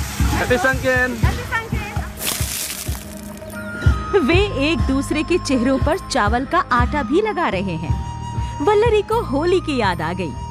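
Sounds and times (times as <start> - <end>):
water splashing from buckets thrown over people: 0.0 - 3.6
speech: 0.4 - 1.5, 4.2 - 10.4.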